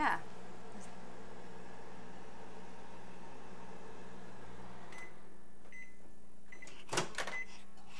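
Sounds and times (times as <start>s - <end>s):
microwave oven running with a low electrical hum: 0.0s - 7.5s.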